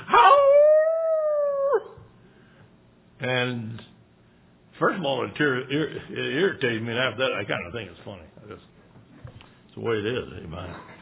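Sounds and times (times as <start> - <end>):
hound dog howling: 0.0 - 2.0
speech: 3.2 - 3.9, 4.8 - 8.7, 9.8 - 10.9.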